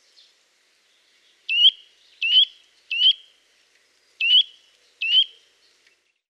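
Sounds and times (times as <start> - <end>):
Eurasian nuthatch calling: 1.5 - 3.3, 4.2 - 5.5.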